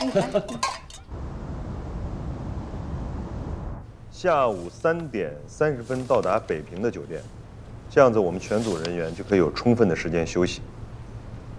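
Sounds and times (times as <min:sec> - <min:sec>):
glasses clinking together during a toast: 0:00.0 - 0:01.1
steady even hum: 0:00.0 - 0:11.5
speech: 0:00.1 - 0:00.8, 0:04.2 - 0:10.8.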